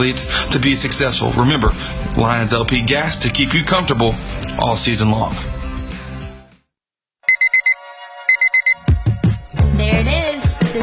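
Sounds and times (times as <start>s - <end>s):
speech: 0.0s - 5.5s
music: 0.0s - 6.6s, 7.8s - 10.8s
electronic alarm clock beeping: 7.3s - 8.8s.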